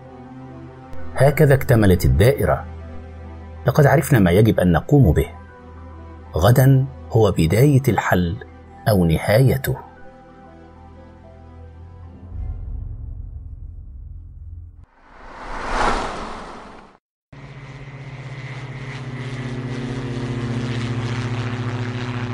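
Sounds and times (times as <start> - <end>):
speech: 1.2 - 2.7, 3.6 - 5.4, 6.3 - 9.9
rising whoosh: 14.9 - 17.0
airplane engine drone in flight: 15.0 - 22.3.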